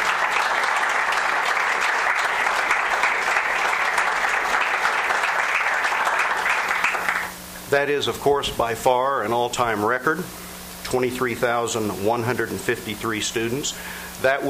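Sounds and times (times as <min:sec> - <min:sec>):
audience applause during a university address: 0:00.0 - 0:07.3
speech: 0:07.7 - 0:14.4.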